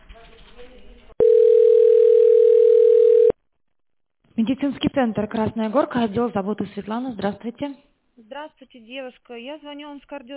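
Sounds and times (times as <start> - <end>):
telephone line tone while a call is transferred to a medical centre: 1.2 - 3.4
speech: 4.4 - 10.3.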